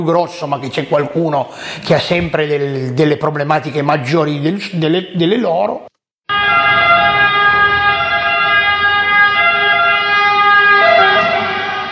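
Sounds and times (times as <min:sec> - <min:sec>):
speech: 0:00.0 - 0:05.9
ambulance siren: 0:06.2 - 0:11.9.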